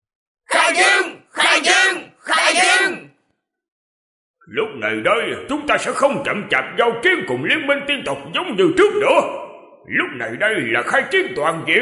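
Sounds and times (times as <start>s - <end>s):
sect disciples shouting toward the sky: 0.5s - 3.1s
speech: 4.5s - 11.7s.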